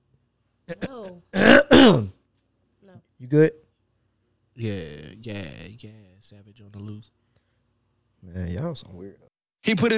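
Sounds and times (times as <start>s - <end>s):
speech: 0.7s - 1.3s, 3.2s - 3.6s, 4.6s - 7.3s, 8.2s - 9.9s
person clearing throat: 0.7s - 2.2s.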